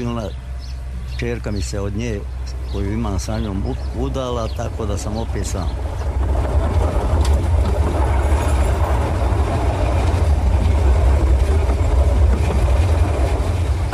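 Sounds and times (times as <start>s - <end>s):
train running on rails: 0.0s - 13.9s
speech: 0.2s - 0.5s, 1.2s - 6.3s
faint rhythmic train wheel clatter: 3.2s - 13.9s.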